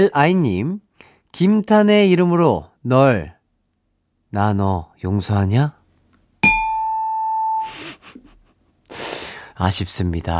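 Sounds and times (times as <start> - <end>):
speech: 0.0 - 3.4, 4.3 - 5.8, 7.6 - 7.9, 8.9 - 10.3
bright bell-like chime: 6.4 - 7.7.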